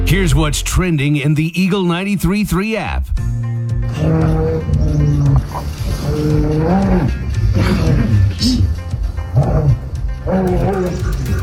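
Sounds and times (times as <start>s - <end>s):
speech: 0.2s - 3.2s, 3.9s - 4.4s, 5.5s - 8.5s
grizzly bear and wolf fighting over food in Yellowstone National Park: 3.8s - 11.3s.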